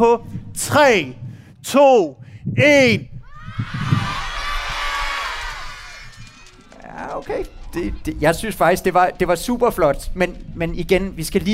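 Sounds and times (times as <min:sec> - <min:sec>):
speech: 0:00.0 - 0:03.1, 0:07.0 - 0:11.5
large crowd shouting a greeting in unison: 0:03.3 - 0:06.8
people whooping: 0:03.3 - 0:08.0.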